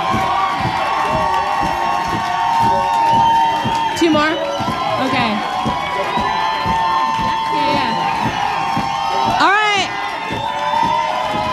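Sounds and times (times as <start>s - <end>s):
audience at a live music show cheering and whooping: 0.0s - 11.5s.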